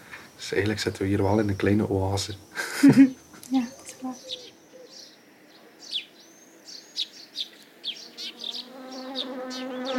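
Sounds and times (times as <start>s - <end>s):
birds chirping and tweeting: 0.0s - 9.9s
speech: 0.5s - 4.4s
laughter: 2.6s - 3.2s
bumblebee flying with a low droning buzz: 7.8s - 9.9s.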